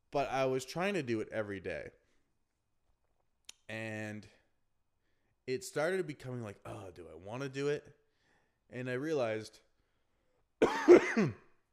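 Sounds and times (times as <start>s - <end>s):
speech: 0.1s - 2.0s, 3.7s - 4.4s, 5.5s - 8.0s, 8.7s - 9.7s, 10.6s - 11.4s
person coughing: 10.6s - 11.6s.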